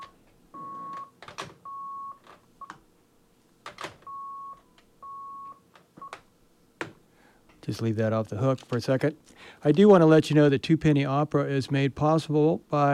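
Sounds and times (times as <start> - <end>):
buzzer beeping: 0.0 - 2.2
speech: 7.7 - 12.9.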